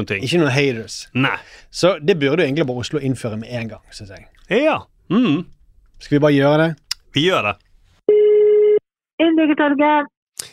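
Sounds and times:
speech: 0:00.0 - 0:07.6, 0:09.2 - 0:10.5
voice answering a telephone call: 0:05.1 - 0:05.5
telephone ringback tone of a call from Oslo municipality to Drammen municipality: 0:08.1 - 0:08.8.

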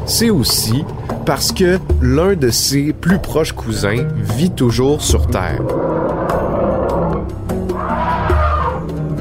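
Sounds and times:
speech: 0:00.1 - 0:06.2
elephant trumpeting: 0:05.4 - 0:09.0.

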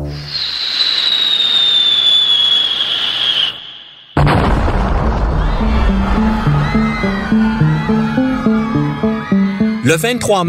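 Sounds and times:
shrill whistle dropping in pitch: 0:00.1 - 0:04.2, 0:05.5 - 0:10.0
artillery shell explosion: 0:04.1 - 0:05.9
rhythmic pulsing music: 0:05.7 - 0:10.1
speech: 0:09.9 - 0:10.4.

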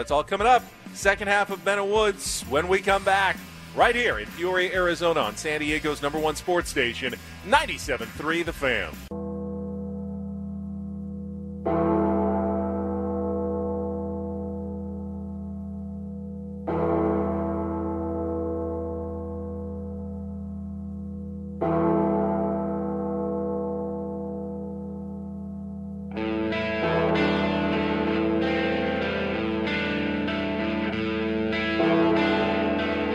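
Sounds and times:
speech: 0:00.0 - 0:09.1
deep heavy bell tolling: 0:09.1 - 0:33.1.

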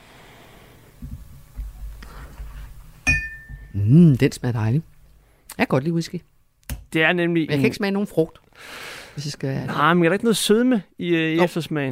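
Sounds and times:
whisky glasses clinking in a toast at a whisky tasting: 0:03.0 - 0:03.8
speech: 0:03.8 - 0:04.9, 0:05.6 - 0:06.3, 0:06.9 - 0:11.9.

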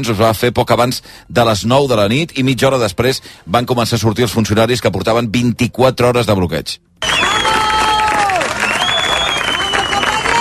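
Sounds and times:
speech: 0:00.0 - 0:07.1
prison officers clapping: 0:07.0 - 0:10.3
high sliding whistle-like tone: 0:08.6 - 0:10.0.

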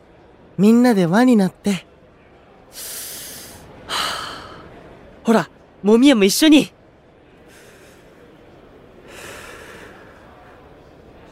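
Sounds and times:
speech: 0:00.6 - 0:01.9, 0:02.7 - 0:03.0, 0:05.3 - 0:06.8
group taking deep breaths together to calm nerves before performing: 0:02.7 - 0:04.8, 0:07.4 - 0:10.6.

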